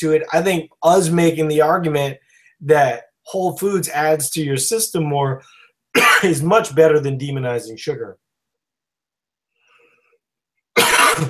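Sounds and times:
speech: 0.0s - 8.2s
harsh raspy cough: 5.9s - 6.4s, 10.8s - 11.2s.

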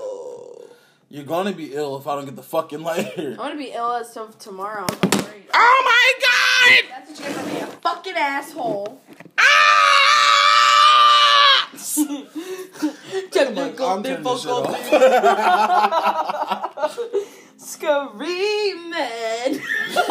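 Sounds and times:
person screaming: 0.0s - 0.8s, 5.6s - 6.9s, 9.4s - 12.0s
speech: 1.1s - 9.2s, 12.0s - 20.0s
frantic shouting: 5.6s - 6.9s, 9.4s - 11.9s
high-pitched wailing vocal cries: 9.4s - 11.8s
laughter: 14.7s - 17.3s.

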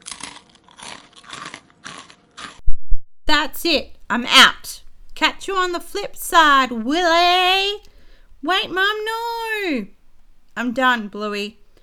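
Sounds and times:
loud open-mouthed wet crunchy chewing: 0.0s - 2.6s
speech: 3.4s - 10.0s, 10.6s - 11.6s.

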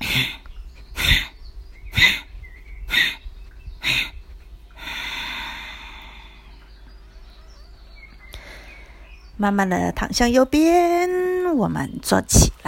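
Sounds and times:
forceful nasal breaths during a lying-down breathing exercise: 0.0s - 2.3s, 2.9s - 3.2s, 3.8s - 6.5s
steady hissing exhale during a breathing exercise: 0.0s - 2.3s, 3.8s - 6.7s, 8.2s - 9.3s
speech: 0.2s - 0.4s, 9.4s - 12.6s.

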